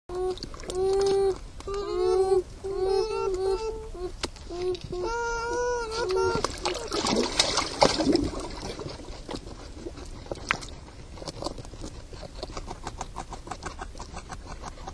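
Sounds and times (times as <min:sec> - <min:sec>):
beaver siblings: 0:00.1 - 0:14.9.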